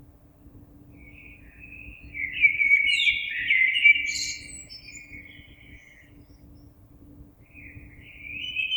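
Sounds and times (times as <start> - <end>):
Common blackbird singing warbled fluty phrases: 1.0 - 6.7, 7.5 - 8.7.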